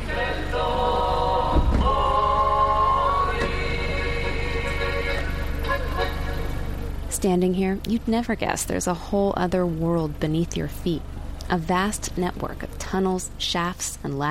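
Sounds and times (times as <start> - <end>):
loud bright folk music on a stereo: 0.0 - 6.9
car engines idling in a steady low rumble: 0.0 - 14.3
speech: 7.2 - 14.3.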